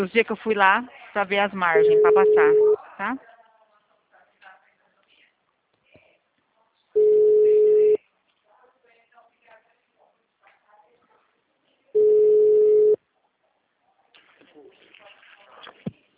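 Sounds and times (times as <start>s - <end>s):
speech: 0.0s - 3.3s
phone call ringback tones after being dialled: 1.8s - 2.8s, 7.0s - 8.0s, 12.0s - 13.0s.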